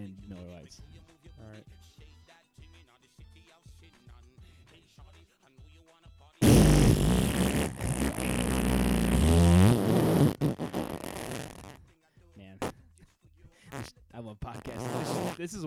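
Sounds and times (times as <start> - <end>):
speech: 0.0 - 2.1, 14.2 - 15.6
fart noise made with the mouth, buzzing sputtering raspberry: 6.4 - 11.8, 13.7 - 13.9, 14.5 - 15.5.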